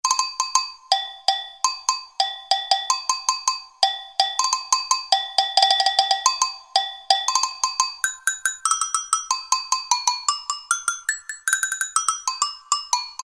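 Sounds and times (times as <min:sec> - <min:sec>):
agogo bell: 0:00.1 - 0:13.2.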